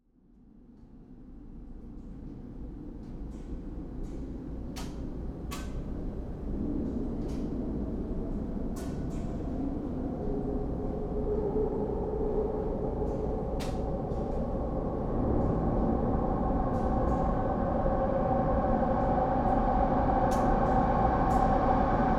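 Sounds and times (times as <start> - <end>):
SkyTrain station ambience in Vancouver, Canada: 1.1 - 22.1.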